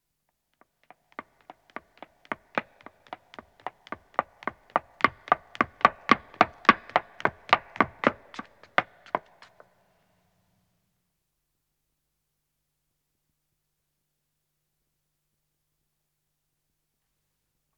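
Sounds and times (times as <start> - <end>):
woman running footsteps on stone: 0.6 - 9.7.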